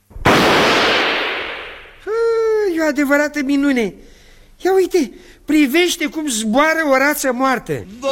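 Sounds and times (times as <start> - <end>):
single gunshot fired at a duck flying up: 0.2 - 2.0
speech: 2.8 - 8.1.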